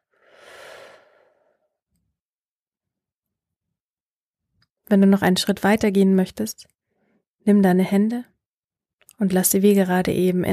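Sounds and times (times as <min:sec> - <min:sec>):
breathy exhale during a guided breathing meditation: 0:00.0 - 0:01.8
speech: 0:04.9 - 0:06.8, 0:07.4 - 0:08.3, 0:09.2 - 0:10.5.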